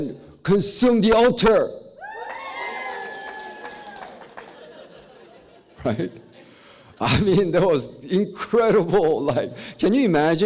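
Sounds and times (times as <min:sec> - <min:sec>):
speech: 0:00.0 - 0:01.8, 0:05.8 - 0:06.3, 0:07.0 - 0:10.4
crowd cheering and shouting: 0:02.0 - 0:04.3
sharp claps and whoops: 0:02.0 - 0:04.8
laughter: 0:04.0 - 0:07.5.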